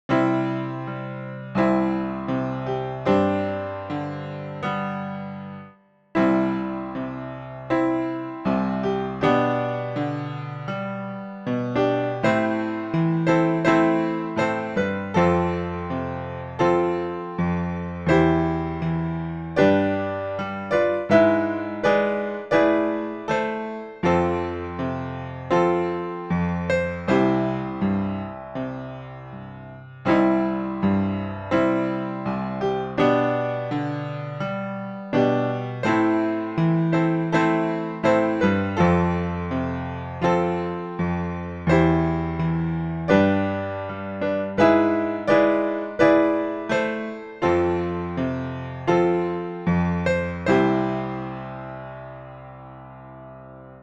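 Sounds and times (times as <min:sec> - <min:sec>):
piano backing track: 0:00.0 - 0:53.8.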